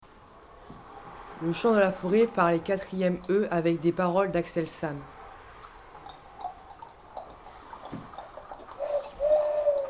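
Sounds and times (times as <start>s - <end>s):
speech: 1.4s - 5.1s
turtle dove cooing: 8.2s - 9.8s.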